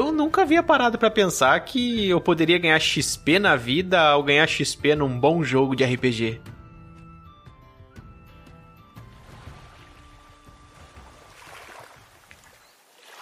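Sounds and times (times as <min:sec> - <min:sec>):
speech: 0:00.0 - 0:06.5
waves breaking on rocks: 0:09.1 - 0:13.2.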